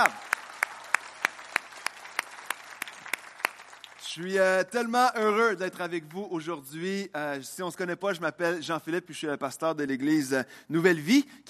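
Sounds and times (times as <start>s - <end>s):
scattered applause: 0.0s - 4.5s
church congregation clapping in unison: 0.0s - 6.4s
speech: 4.2s - 11.4s.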